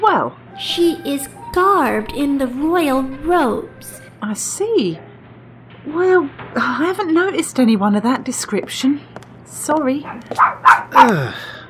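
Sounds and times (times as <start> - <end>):
speech: 0.2 - 5.1, 5.8 - 11.6
female dog barking: 10.0 - 11.2.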